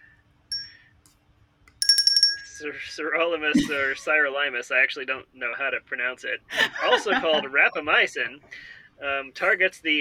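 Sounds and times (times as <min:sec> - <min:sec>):
bell ringing: 0:00.5 - 0:00.8, 0:01.8 - 0:02.7
speech: 0:02.6 - 0:10.0
laughter: 0:03.6 - 0:04.2, 0:06.5 - 0:08.0.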